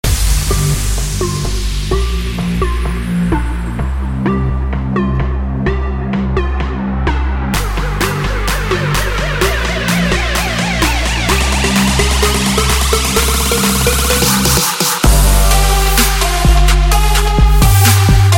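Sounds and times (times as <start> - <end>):
trap beat: 0.0 - 18.3.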